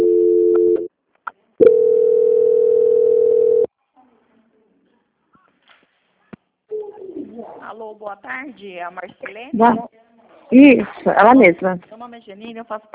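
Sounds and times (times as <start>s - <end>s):
telephone transfer tones during a bank call: 1.6s - 3.7s
speech: 8.0s - 12.9s.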